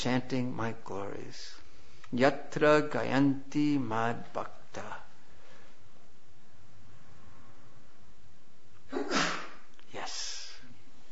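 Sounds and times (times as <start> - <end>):
speech: 0.0 - 5.0
room noise: 0.0 - 11.1
sneeze: 8.9 - 9.7.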